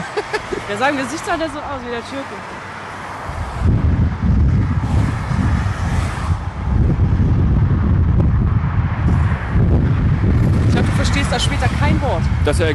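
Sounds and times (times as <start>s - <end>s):
laughter: 0.0s - 1.0s
speech: 0.7s - 2.7s, 11.3s - 12.7s
heavy wind buffeting an unshielded microphone: 3.2s - 12.7s.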